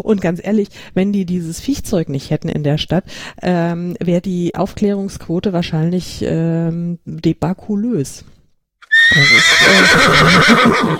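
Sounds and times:
speech: 0.0s - 8.4s, 9.1s - 10.9s
horse whinnying with a wavering pulsing tone: 8.8s - 10.9s.

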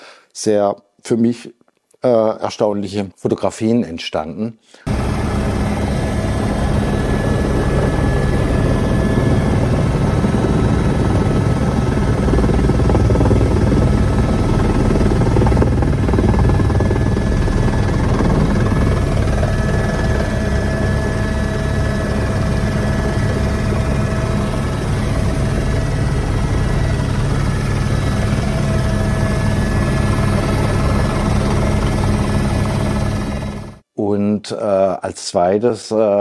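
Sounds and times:
speech: 0.4s - 4.9s, 35.0s - 36.1s
helicopter flying over a volcano: 4.9s - 33.8s.

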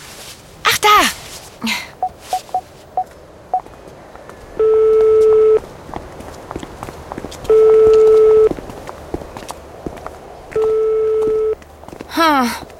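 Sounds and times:
speech: 1.6s - 1.9s
mobile phone dialing beeps: 2.0s - 2.6s, 4.6s - 5.6s, 7.5s - 8.5s, 10.6s - 11.6s
mobile phone ringing tone: 2.0s - 3.1s, 4.6s - 5.6s, 7.5s - 8.5s, 10.6s - 11.6s.

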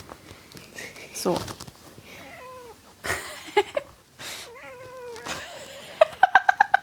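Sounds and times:
soft rustling: 0.0s - 5.9s
speech: 1.2s - 1.6s
cat meowing in a home office: 2.2s - 2.8s, 4.5s - 5.4s.

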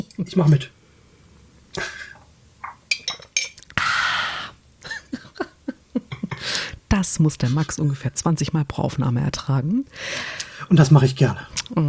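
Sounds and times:
speech: 0.2s - 0.8s, 1.8s - 2.0s, 7.0s - 11.8s
breaths: 0.8s - 2.2s, 3.8s - 4.6s, 6.4s - 6.8s, 9.9s - 10.7s
laughter: 1.8s - 2.2s, 4.8s - 6.5s
glass clinks: 2.6s - 3.6s.

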